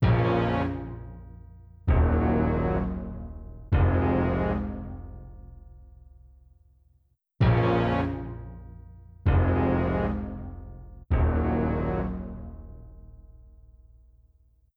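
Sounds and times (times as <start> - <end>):
unsettled orchestral synth stabs: 0.0 - 1.0, 1.9 - 5.1, 7.4 - 8.4, 9.3 - 13.1.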